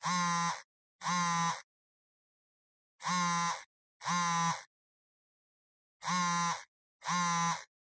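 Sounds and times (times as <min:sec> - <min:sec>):
cell phone vibrating in hand: 0:00.0 - 0:01.7, 0:03.0 - 0:04.7, 0:06.0 - 0:07.7.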